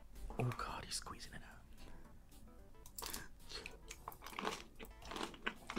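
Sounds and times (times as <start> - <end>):
person whispering softly over eating: 0.4 - 1.6
lip smacks while eating: 2.8 - 5.7
wet chewing and crisp crunching of jelly-like food: 2.8 - 5.7.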